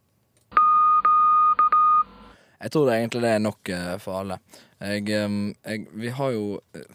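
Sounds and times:
electronic tone keyed with a Morse key: 0.6s - 2.3s
speech: 2.6s - 6.9s.

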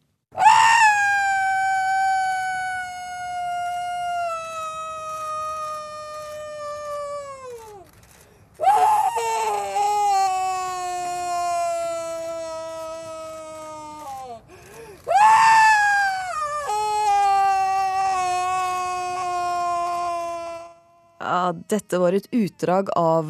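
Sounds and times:
woman screaming anguished wails: 0.4s - 7.8s, 8.6s - 14.4s, 15.1s - 22.0s
woman gasping: 14.5s - 15.1s
speech: 21.7s - 23.2s.

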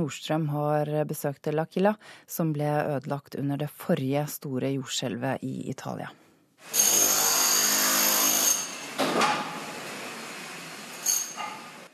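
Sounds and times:
speech: 0.0s - 6.9s
harsh mechanical whine of drilling at a construction site: 6.6s - 11.9s
clanks and knocks of cement trucks and excavators rebuilding L'Aquila Italy: 8.8s - 9.8s, 11.4s - 11.8s.

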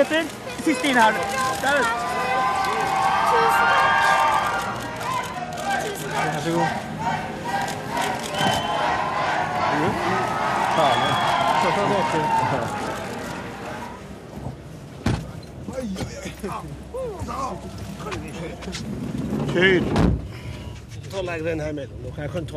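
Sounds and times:
speech: 0.0s - 3.7s, 6.2s - 7.2s, 10.8s - 13.0s, 15.8s - 20.3s, 21.1s - 22.5s
overlapping voices in a busy outdoor scene: 4.2s - 14.1s
car door slamming: 15.0s - 15.4s.

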